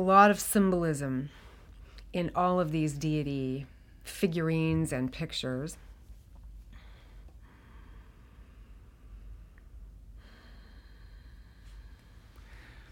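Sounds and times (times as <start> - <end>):
speech: 0.0 - 1.4, 2.1 - 5.9
low rumble: 0.0 - 12.9
slow deep breathing: 6.6 - 12.9.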